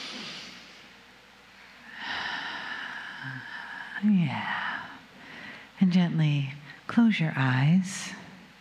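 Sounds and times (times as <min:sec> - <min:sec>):
deep breath in during a guided group breathing exercise: 0:01.8 - 0:04.0, 0:04.6 - 0:05.8
speech: 0:03.2 - 0:04.7, 0:05.8 - 0:08.2.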